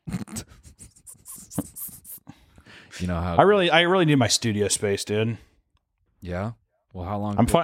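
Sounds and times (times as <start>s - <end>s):
dogs sniffing: 0.5s - 2.3s
speech: 3.0s - 5.5s, 6.2s - 7.6s.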